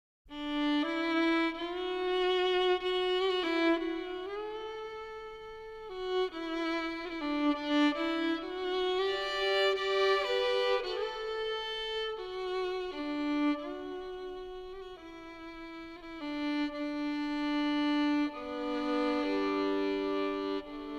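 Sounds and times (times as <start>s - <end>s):
solo violin: 0.3s - 20.9s.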